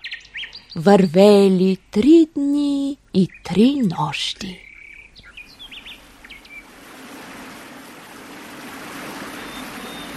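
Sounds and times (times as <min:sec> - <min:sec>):
birds chirping and whistling: 0:00.0 - 0:00.9, 0:04.6 - 0:06.7, 0:09.3 - 0:10.1
speech: 0:00.7 - 0:04.6
waterfall roaring: 0:06.7 - 0:10.1.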